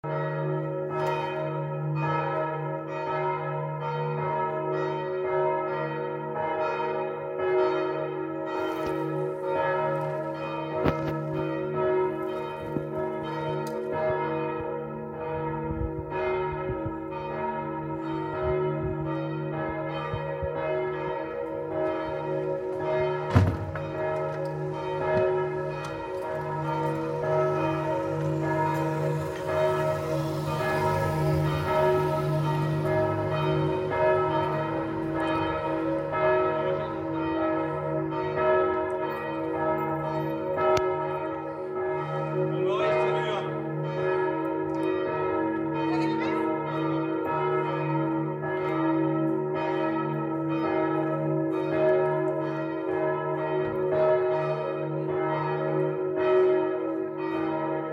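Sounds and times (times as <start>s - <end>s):
bells: 0.0s - 57.9s.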